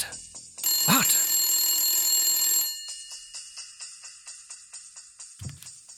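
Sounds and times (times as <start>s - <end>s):
old orange 612 rotary telephone ringing inside a refrigerator vegetable drawer: 0.6s - 3.8s.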